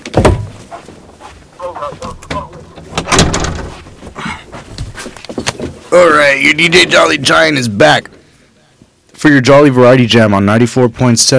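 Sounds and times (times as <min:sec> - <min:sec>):
door being pulled shut with heavy thunk: 0:00.1 - 0:00.6, 0:02.1 - 0:03.8
speech: 0:05.9 - 0:08.2, 0:09.2 - 0:11.3.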